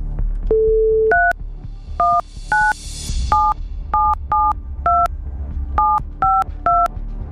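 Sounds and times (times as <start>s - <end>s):
two-tone keypad beeps of a phone number being dialed: 0.5s - 1.3s, 2.0s - 5.1s, 5.8s - 6.9s.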